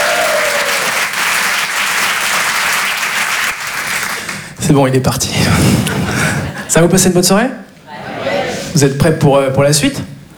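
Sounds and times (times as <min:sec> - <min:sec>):
audience applauding and cheering a presenter at an evening stage show: 0:00.0 - 0:04.6
speech: 0:04.7 - 0:07.7, 0:08.8 - 0:10.1.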